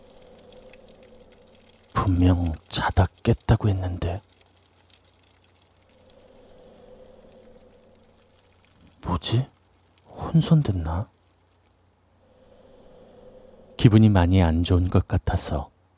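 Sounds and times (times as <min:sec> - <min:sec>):
faint running water: 0:00.0 - 0:11.8
speech: 0:02.0 - 0:04.3, 0:09.2 - 0:09.5, 0:10.3 - 0:11.1, 0:13.8 - 0:15.7.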